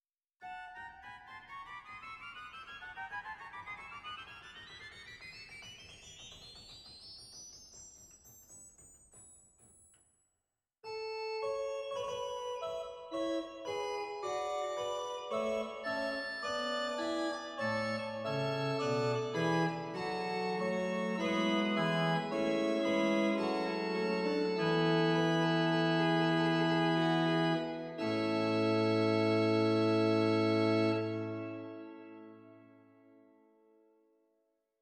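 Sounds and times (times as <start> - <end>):
pipe organ Bovenpositief Tertiaan stop in Zwolle: 10.9 - 32.7.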